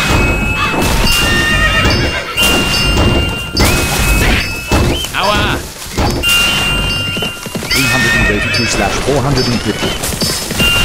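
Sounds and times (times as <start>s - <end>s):
loud crashing thuds: 0.0s - 7.7s
hooves clopping: 0.3s - 10.8s
horses whinnying and neighing: 0.4s - 10.8s
speech: 9.0s - 10.4s.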